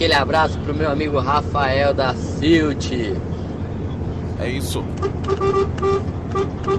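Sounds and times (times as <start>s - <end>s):
speech: 0.0s - 3.4s, 4.4s - 6.7s
truck engine and road noise: 0.0s - 6.7s
truck horn honking on the road: 4.9s - 6.7s.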